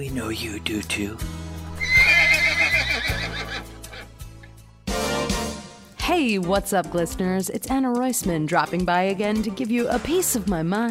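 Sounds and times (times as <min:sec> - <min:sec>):
speech: 0:00.0 - 0:01.5, 0:03.0 - 0:03.7, 0:06.1 - 0:10.9
horse neighing loudly and shrilly: 0:01.8 - 0:04.2.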